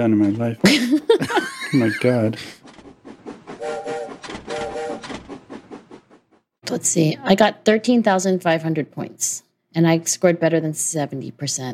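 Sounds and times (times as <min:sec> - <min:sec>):
speech: 0:00.0 - 0:02.6, 0:06.7 - 0:11.7
laughter: 0:00.6 - 0:02.6
rumbling rhythmic train clatter: 0:01.2 - 0:06.5
bright steady train whistle tone: 0:03.6 - 0:05.1.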